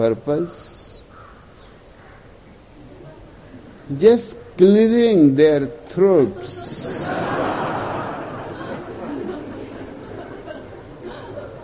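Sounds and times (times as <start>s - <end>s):
speech: 0.0s - 0.8s, 3.9s - 7.6s
steady outdoor hiss and murmur: 0.0s - 11.6s
crows cawing among trees in the early morning: 1.1s - 2.4s
laughter: 6.4s - 11.6s.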